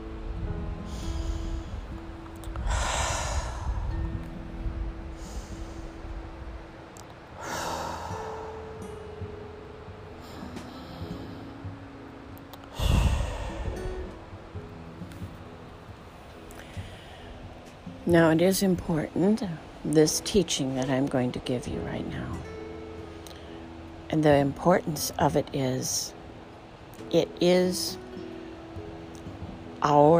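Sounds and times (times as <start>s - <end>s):
steady low hum: 0.0s - 30.1s
deep cleansing breaths during a relaxation exercise: 0.9s - 4.2s, 5.1s - 6.2s, 7.4s - 8.8s, 10.2s - 11.5s, 12.7s - 14.2s, 16.5s - 17.7s
speech: 18.1s - 22.5s, 24.1s - 26.2s, 27.1s - 28.0s, 29.8s - 30.1s.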